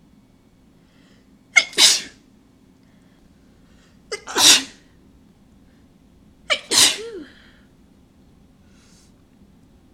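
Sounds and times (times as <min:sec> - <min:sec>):
person sneezing: 0:01.6 - 0:02.2, 0:04.1 - 0:04.9, 0:06.5 - 0:07.6.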